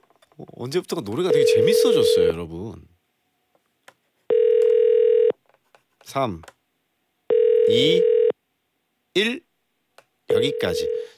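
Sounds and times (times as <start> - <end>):
speech: 0.4 - 2.9, 6.1 - 6.6, 7.7 - 8.2, 9.2 - 9.5, 10.3 - 11.1
steady telephone tone on a radio call-in line: 1.3 - 2.2, 4.3 - 5.4, 7.3 - 8.4, 10.3 - 11.1.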